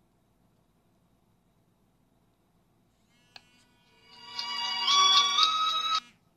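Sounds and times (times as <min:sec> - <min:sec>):
mobile phone with China Mobile SIM card ringing with a tonal ringtone: 0:04.1 - 0:06.1.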